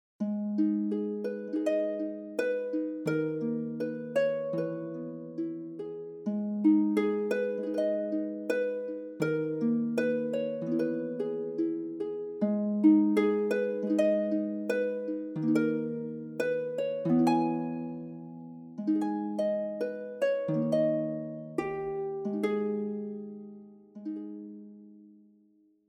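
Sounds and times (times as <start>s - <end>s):
lute playing: 0.4s - 25.0s.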